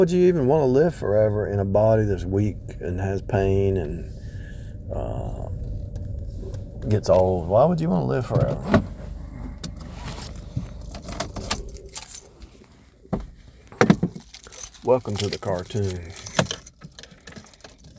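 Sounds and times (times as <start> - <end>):
speech: 0.0 - 4.2, 4.9 - 5.7, 6.8 - 8.9, 14.8 - 16.2
ring of keys jangling: 10.0 - 12.4, 13.7 - 17.9.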